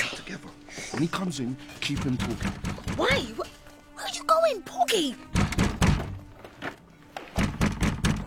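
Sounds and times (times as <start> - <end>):
speech: 0.3 - 3.5, 4.5 - 5.3
man knocking heavily on a wooden door: 1.8 - 3.4, 5.3 - 6.3, 7.4 - 8.2.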